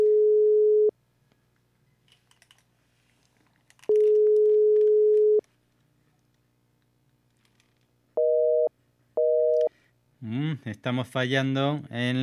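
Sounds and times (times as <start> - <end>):
telephone ringing tone from an outgoing call: 0.0 - 0.9, 3.9 - 5.4, 8.2 - 9.7
speech: 10.6 - 12.2.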